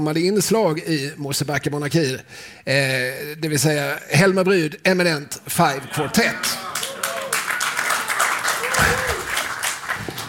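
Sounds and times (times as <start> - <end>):
speech: 0.0 - 6.8, 8.8 - 9.2
faint murmuring voices in the crowd: 5.8 - 9.2
audience applause: 6.2 - 10.2.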